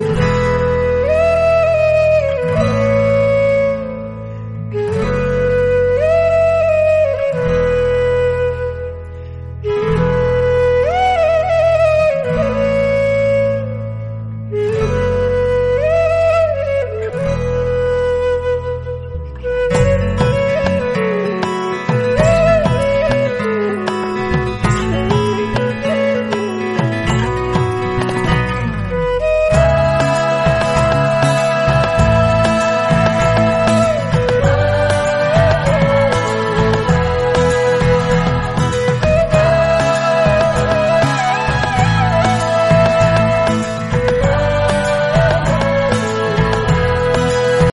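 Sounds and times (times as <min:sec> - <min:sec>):
flute instrumental: 0:00.0 - 0:47.7.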